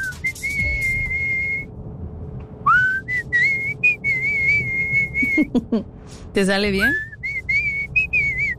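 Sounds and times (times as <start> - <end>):
person whistling a simple tune: 0.0 - 1.6, 2.7 - 5.5, 6.8 - 8.5
speech: 5.4 - 7.1.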